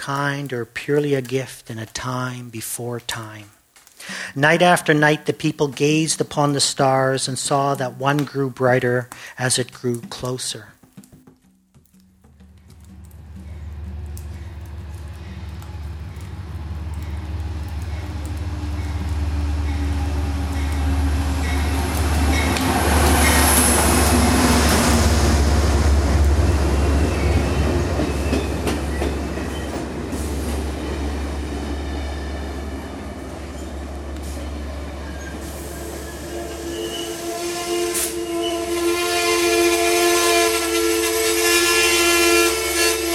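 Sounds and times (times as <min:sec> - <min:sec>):
speech: 0:00.0 - 0:03.6, 0:04.3 - 0:10.8
train rolling through a station: 0:12.9 - 0:43.1
high metallic squeals and tones of a train: 0:34.4 - 0:39.4.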